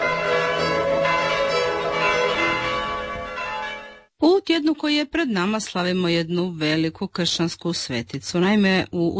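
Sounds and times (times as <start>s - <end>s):
church bells ringing: 0.0s - 4.1s
speech: 4.6s - 9.1s.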